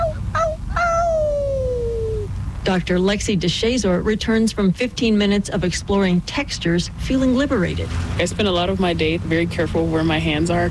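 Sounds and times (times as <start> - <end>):
person howling to call people back: 0.0 - 2.3
speech: 2.6 - 10.7.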